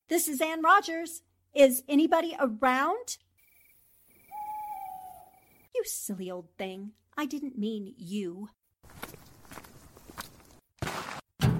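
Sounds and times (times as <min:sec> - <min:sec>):
speech: 0:00.1 - 0:03.3, 0:05.8 - 0:08.6
soft footsteps in a cemetery at night: 0:08.8 - 0:11.0.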